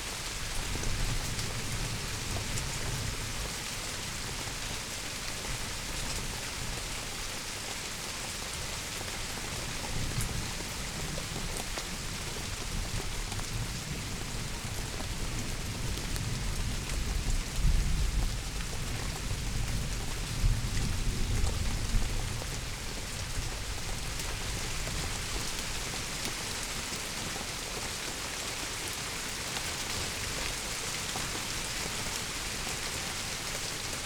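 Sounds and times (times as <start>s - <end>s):
heavy rain falling in a back garden at night: 0.0s - 34.0s.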